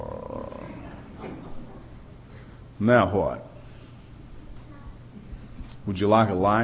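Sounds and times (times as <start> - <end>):
deep rumbling wild animal roar: 0.0 - 1.0
speech: 2.8 - 3.5, 5.8 - 6.6.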